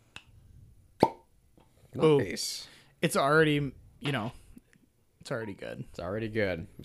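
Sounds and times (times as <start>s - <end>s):
cork popping out of whiskey bottle: 1.0s - 1.3s
speech: 2.0s - 4.4s, 5.2s - 6.8s.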